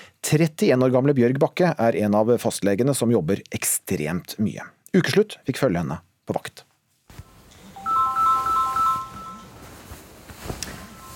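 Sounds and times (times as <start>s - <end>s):
speech: 0.3s - 6.7s
quiet room noise: 6.8s - 11.1s
phone ringing with a bright warbling electronic tone: 7.6s - 9.8s, 10.7s - 11.1s.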